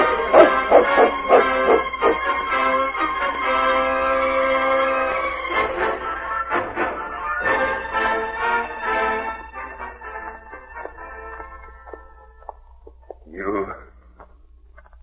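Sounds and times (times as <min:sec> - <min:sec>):
dog barking: 0:00.0 - 0:02.4
steady humming drone: 0:00.0 - 0:14.8.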